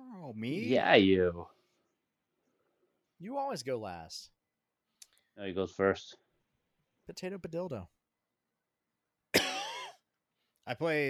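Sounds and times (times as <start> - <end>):
speech: 0.3 - 1.6, 3.2 - 4.4, 5.4 - 6.2, 7.1 - 8.0, 10.6 - 11.0
sharp cough trailing into a strained voiced rasp: 9.4 - 10.0.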